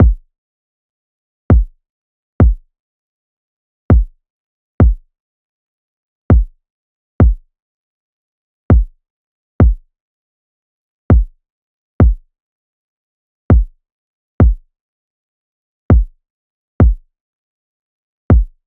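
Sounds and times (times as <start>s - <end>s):
kick drum at 100 bpm in A minor: 0.0s - 0.3s, 1.5s - 1.8s, 2.4s - 2.7s, 3.9s - 4.2s, 4.8s - 5.1s, 6.3s - 6.6s, 7.2s - 7.5s, 8.7s - 9.0s, 9.6s - 9.9s, 11.1s - 11.4s, 12.0s - 12.3s, 13.5s - 13.8s, 14.4s - 14.7s, 15.9s - 16.2s, 16.8s - 17.1s, 18.3s - 18.6s.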